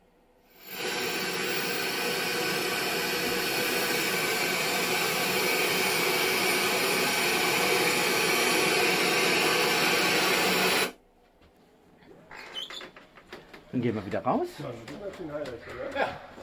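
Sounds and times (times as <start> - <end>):
aircraft jet turbine roaring at low power: 0.6 - 11.0
speech: 13.8 - 16.4.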